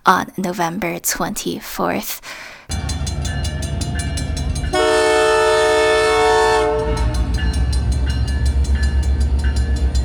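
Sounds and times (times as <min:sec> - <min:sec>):
speech: 0:00.1 - 0:02.8
Canadian Pacific train horn blaring in Lennoxville: 0:02.7 - 0:07.9
Canadian Pacific train rolling past in Lennoxville: 0:02.7 - 0:10.0.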